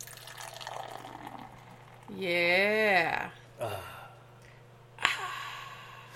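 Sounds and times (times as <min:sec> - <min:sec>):
lager beer pouring into a glass: 0:00.0 - 0:02.1
speech: 0:02.1 - 0:03.4.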